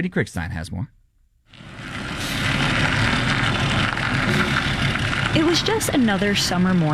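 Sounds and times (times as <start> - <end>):
speech: 0.0 - 1.7, 5.3 - 6.9
heavy delivery truck rumbling down cobblestone street: 1.5 - 6.9.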